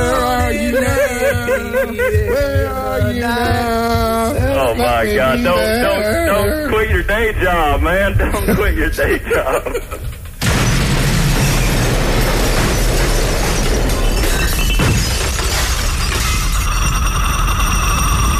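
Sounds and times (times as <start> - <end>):
laughter: 0.0 - 7.1, 8.1 - 10.2
speech: 1.5 - 10.2
exploding radio blast: 10.4 - 18.3
roaring, crackling and shattering of an exploding radio: 10.4 - 18.3.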